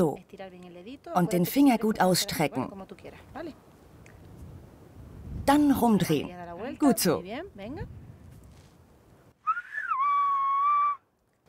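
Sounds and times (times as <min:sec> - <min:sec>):
speech: 0:00.0 - 0:03.7, 0:05.5 - 0:08.0
whistled-language greeting: 0:09.4 - 0:11.1.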